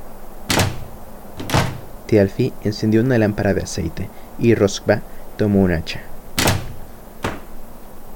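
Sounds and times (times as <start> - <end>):
heavy knocks on a wooden door: 0.5 - 1.9, 6.4 - 7.5
speech: 2.1 - 6.1.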